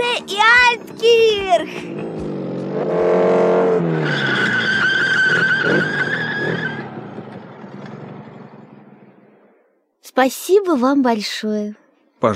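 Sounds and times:
motorcycle tire squealing under hard braking: 0.2 - 9.6
motorcycle engine revving and idling on arrival at Altkirch: 0.8 - 9.6
speech: 10.2 - 12.3.

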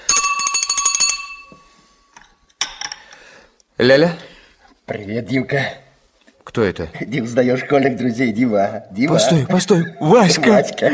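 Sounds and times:
old-style telephone bell ringing: 0.0 - 2.1
speech: 3.8 - 4.3, 4.9 - 5.8, 6.5 - 10.9.

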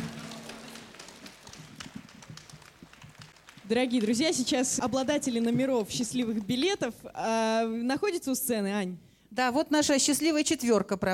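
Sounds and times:
audience applause: 0.0 - 5.4
speech: 3.7 - 11.1.

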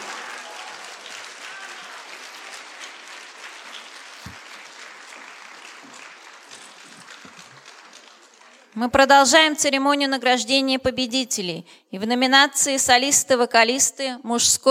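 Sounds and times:
audience applause at an award ceremony and gala concert: 0.0 - 8.9
speech: 8.8 - 14.6.

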